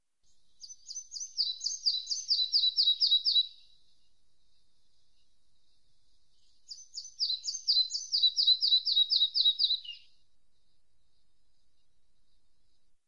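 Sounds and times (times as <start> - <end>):
red-breasted flycatcher voice: 0.6 - 3.7, 6.4 - 10.1.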